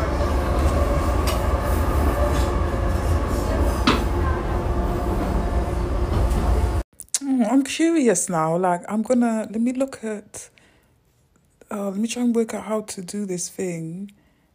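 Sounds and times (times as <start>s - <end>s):
moving train carriage rumble and rattle: 0.0s - 6.8s
sharp clunks from the train tracks: 0.0s - 6.8s
speech: 7.7s - 10.5s, 11.7s - 14.2s.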